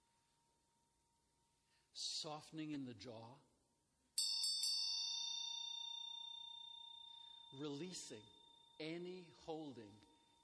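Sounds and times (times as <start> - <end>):
speech: 2.0 - 3.5, 7.5 - 10.4
bell struck once and ringing: 4.2 - 10.4.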